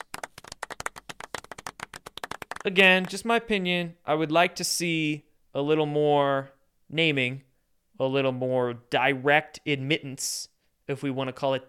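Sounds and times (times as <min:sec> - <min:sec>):
hands clapping: 0:00.0 - 0:03.4
speech: 0:02.6 - 0:11.6.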